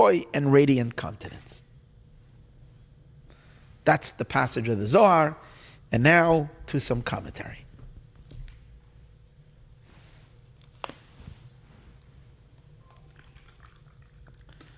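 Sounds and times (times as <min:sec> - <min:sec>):
speech: 0:00.0 - 0:01.6, 0:03.9 - 0:07.6
low steady hum: 0:00.0 - 0:14.7
person sipping and swallowing water: 0:12.0 - 0:14.7.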